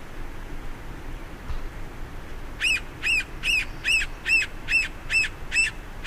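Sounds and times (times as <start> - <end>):
Red-naped sapsucker mewing calls: 2.6 - 6.0.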